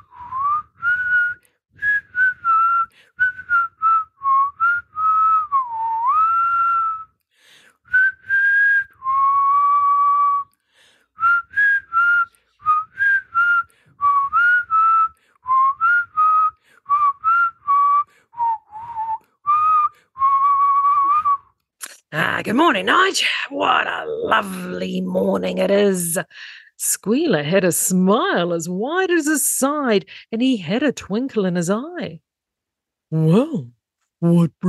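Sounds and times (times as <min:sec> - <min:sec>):
person whistling a tune: 0:00.0 - 0:07.2, 0:07.9 - 0:10.6, 0:11.2 - 0:21.6
speech: 0:22.5 - 0:32.3, 0:33.1 - 0:34.6.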